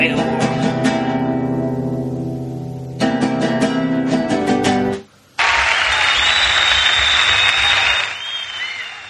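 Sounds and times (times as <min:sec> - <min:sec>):
strummed chord-based music: 0:00.0 - 0:05.1
audience applause and cheering: 0:05.4 - 0:09.0.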